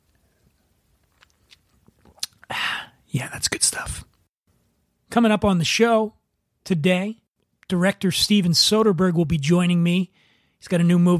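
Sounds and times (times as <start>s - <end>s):
sipping and swallowing sparkling wine: 1.0s - 2.6s
speech: 3.1s - 4.1s, 5.1s - 11.1s.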